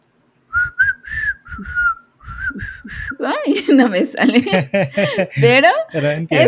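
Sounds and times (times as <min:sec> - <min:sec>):
person whistling by mouth imitating church group whistles: 0:00.5 - 0:03.2
speech: 0:03.2 - 0:06.4
laughter: 0:03.5 - 0:06.4.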